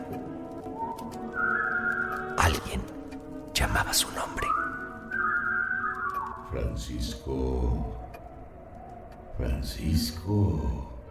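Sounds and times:
peculiar sustained whistle from a distant forest: 0.6s - 2.4s, 4.3s - 6.6s
speech: 2.5s - 3.0s, 3.6s - 4.6s, 6.5s - 8.0s, 9.4s - 10.9s.

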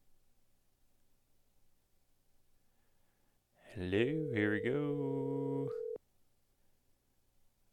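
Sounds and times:
faint hiss: 0.0s - 7.7s
speech: 3.7s - 5.9s
electronic telephone busy tone: 3.7s - 6.0s.

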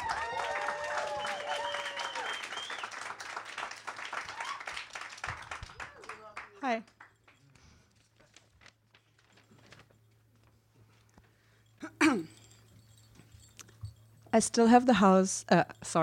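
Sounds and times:
audience applauding at a poetry reading: 0.0s - 7.4s
speech: 6.7s - 6.9s, 14.4s - 16.0s
person coughing: 11.8s - 12.4s.

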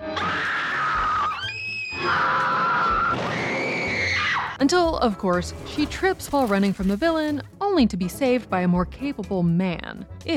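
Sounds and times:
woman screeching in a horror film: 0.2s - 4.6s
speech: 4.6s - 10.3s.

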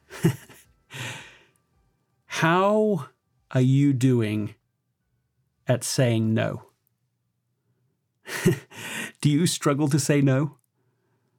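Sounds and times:
speech: 0.2s - 0.4s, 2.4s - 4.6s, 5.7s - 6.7s, 8.4s - 10.6s
deep breaths taken during a calming pause: 0.9s - 1.6s, 8.7s - 9.2s.

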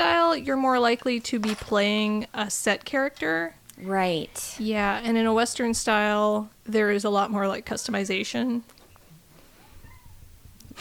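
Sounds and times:
speech: 0.3s - 8.8s
cat meowing: 9.6s - 10.2s.

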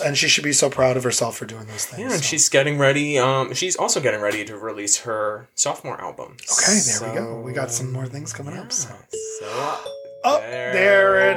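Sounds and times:
speech: 0.0s - 11.3s
bright doorbell-style chime signalling places: 9.1s - 11.3s.

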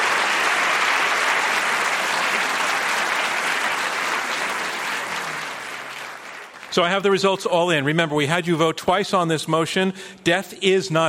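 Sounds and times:
audience applause: 0.0s - 7.0s
speech: 6.8s - 11.0s.

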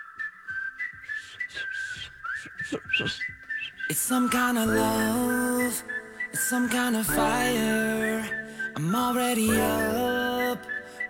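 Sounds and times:
whistled melody opening a boy band pop song: 0.0s - 11.0s
speech: 2.6s - 8.0s, 8.8s - 10.2s
light rhythmic backing of a boy band pop song: 3.9s - 11.0s.

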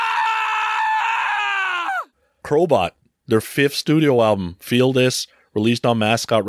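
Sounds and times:
man screaming high-pitched on a rock and roll record: 0.0s - 2.1s
speech: 2.5s - 6.4s.

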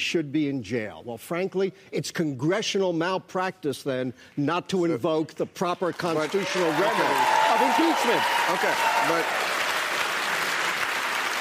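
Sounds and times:
speech: 0.0s - 9.5s
large crowd applauding: 6.0s - 11.3s.

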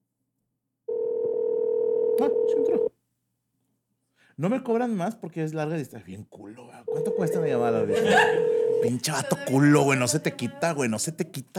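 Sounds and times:
electronic phone ringing tone of a long-distance call from a US phone: 0.9s - 2.9s, 6.9s - 9.1s
speech: 4.4s - 11.5s
laughter: 7.6s - 10.9s.

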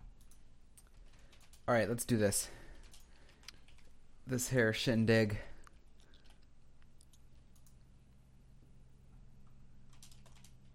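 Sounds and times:
keyboard typing: 0.1s - 1.7s, 2.8s - 3.9s, 6.0s - 7.8s, 9.8s - 10.7s
speech: 1.7s - 2.6s, 4.3s - 5.5s.

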